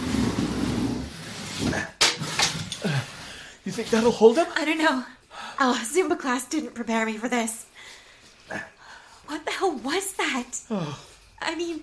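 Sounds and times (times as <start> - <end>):
heavy file cabinet pushed across a courthouse floor: 0.0 - 4.2
speech: 3.8 - 7.7, 8.5 - 11.8.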